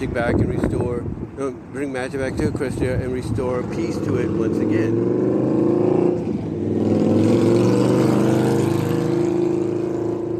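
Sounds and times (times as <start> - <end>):
speech: 0.0 - 6.4
motorcycle passing by: 3.5 - 10.3.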